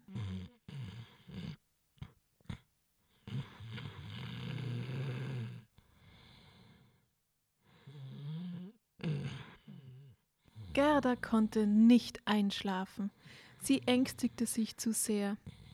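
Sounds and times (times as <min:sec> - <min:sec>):
girl snoring in her sleep: 0:00.0 - 0:02.6, 0:03.2 - 0:05.7, 0:07.8 - 0:12.1, 0:13.1 - 0:15.7
speech: 0:10.8 - 0:15.6.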